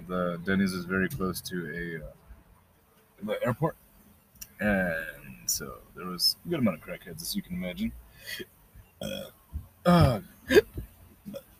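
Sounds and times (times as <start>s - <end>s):
speech: 0.1s - 2.2s, 3.2s - 3.8s, 4.6s - 10.8s
person hiccuping: 9.9s - 11.4s.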